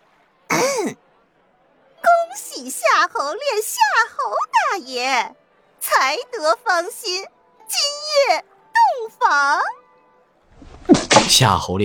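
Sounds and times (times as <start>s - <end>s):
throat clearing cough: 0.5s - 1.0s
speech: 0.8s - 1.0s, 2.6s - 8.5s, 9.2s - 9.8s, 10.9s - 11.8s.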